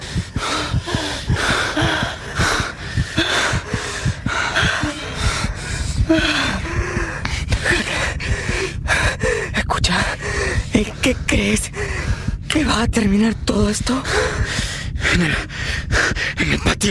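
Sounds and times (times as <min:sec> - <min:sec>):
people panting heavily after running hard: 0:00.0 - 0:12.5, 0:14.0 - 0:16.4
speech: 0:12.8 - 0:14.4, 0:15.2 - 0:15.6, 0:16.4 - 0:16.8.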